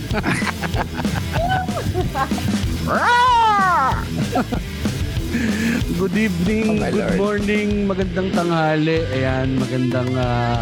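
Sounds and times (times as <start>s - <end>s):
laughter: 0.0s - 6.0s
speech: 0.1s - 3.4s, 5.4s - 10.6s
person mimicking a cat meowing: 2.8s - 4.1s.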